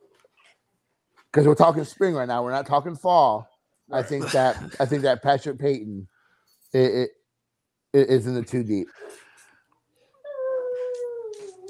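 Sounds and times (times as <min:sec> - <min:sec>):
speech: 0:01.3 - 0:06.1, 0:06.7 - 0:07.2, 0:07.9 - 0:09.2
dog howling and whimpering: 0:10.3 - 0:11.6.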